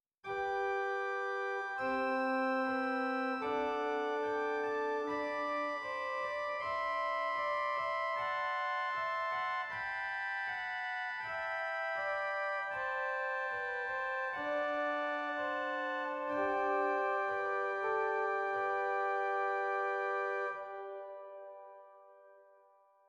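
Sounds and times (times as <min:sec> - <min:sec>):
organ with Bovenpositief Octaav 4 stop in Zwolle: 0:00.3 - 0:22.4.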